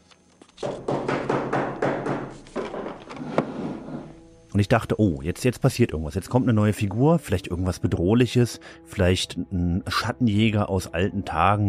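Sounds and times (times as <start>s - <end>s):
knocking on a door: 0.6s - 3.0s
speech: 4.6s - 11.6s.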